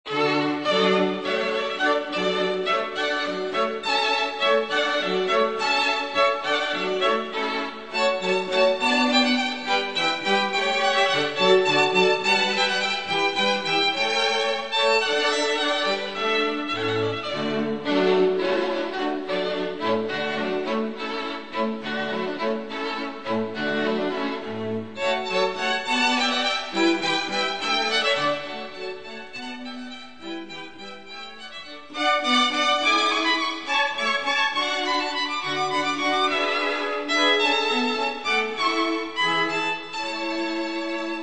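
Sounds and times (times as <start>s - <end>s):
cello: 0.0s - 41.2s
two violins: 0.0s - 41.2s.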